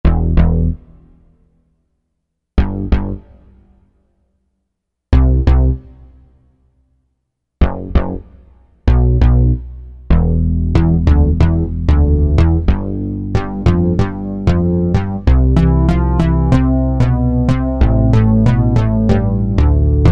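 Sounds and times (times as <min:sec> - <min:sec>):
Korg M1 synth bass: 0:00.0 - 0:01.3, 0:02.6 - 0:03.7, 0:05.1 - 0:06.0, 0:07.6 - 0:20.1.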